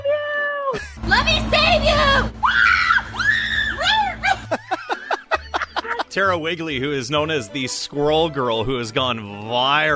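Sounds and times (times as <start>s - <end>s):
speech: 0.7s - 2.9s, 6.1s - 9.9s
person reenacting panicked screams: 2.4s - 4.4s
laughter: 3.8s - 6.3s.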